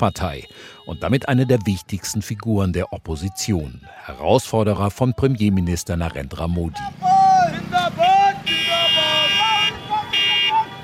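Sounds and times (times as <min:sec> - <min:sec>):
car horns honking: 0:00.0 - 0:01.8, 0:06.9 - 0:10.8
speech: 0:00.0 - 0:08.0
crowd of supporters in India shouting and cheering: 0:01.0 - 0:10.8
campaign car approaching through a crowd: 0:06.1 - 0:10.8.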